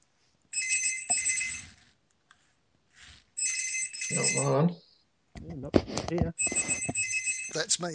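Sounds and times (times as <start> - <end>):
telephone ringing with a bright trilling bell: 0.5 - 1.9, 3.4 - 4.7, 6.4 - 7.8
speech: 4.1 - 4.8, 5.5 - 6.7, 7.6 - 7.9.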